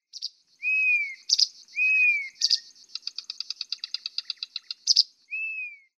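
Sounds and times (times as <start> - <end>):
Blyth's reed warbler Acrocephalus dumetorum singing: 0.0 - 5.9.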